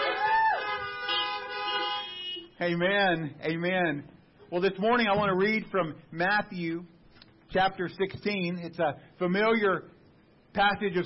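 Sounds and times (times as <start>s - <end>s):
car horns honking during a church service: 0.0s - 2.6s
speech: 2.6s - 10.0s, 10.6s - 11.0s.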